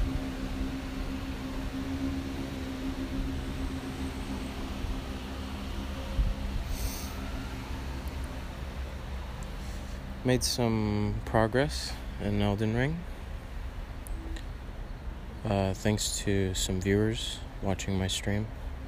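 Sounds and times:
low droning hum: 0.0 - 18.8
steady broadband white noise hiss: 6.6 - 8.4
speech: 10.2 - 13.1, 15.4 - 18.6.

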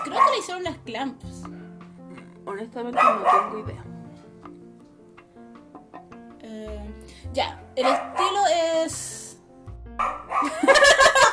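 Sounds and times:
dog barking: 0.0 - 0.5, 3.0 - 3.6, 7.8 - 8.4, 10.0 - 10.5
speech: 0.1 - 1.6, 2.5 - 4.0, 6.5 - 9.2, 10.0 - 11.3
laughter: 10.4 - 11.3.

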